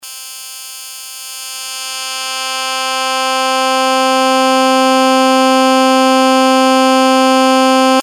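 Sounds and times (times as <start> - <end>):
synth pulse with high-pass cutoff: 2.3 - 8.0.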